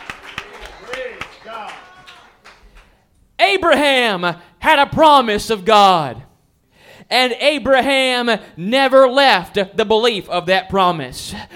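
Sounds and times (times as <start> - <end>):
audience clapping hands in a reverberant room: 0.0 - 3.0
speech: 3.6 - 6.3, 7.1 - 11.5.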